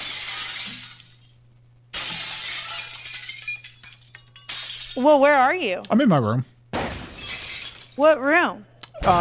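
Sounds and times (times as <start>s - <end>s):
glass deliberately broken in a motel room: 0.0s - 5.5s, 6.8s - 8.2s
tinkling glass fragments scattering: 0.0s - 5.6s, 7.0s - 8.3s
speech: 5.0s - 6.6s, 8.0s - 9.1s.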